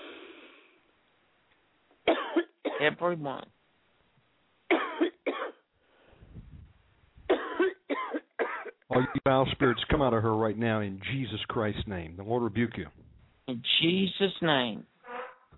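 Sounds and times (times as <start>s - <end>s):
person coughing deeply and harshly: 2.1s - 2.9s, 4.7s - 5.7s, 7.3s - 9.9s
speech: 2.8s - 3.6s, 9.1s - 14.9s
faint low rumble: 6.2s - 7.3s, 9.1s - 13.6s.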